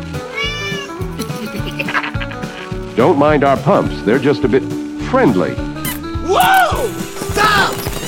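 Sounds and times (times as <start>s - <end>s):
toy keychain meowing like a cat: 0.2s - 1.0s
laughter: 1.1s - 2.8s
speech: 3.0s - 5.7s, 6.3s - 7.8s.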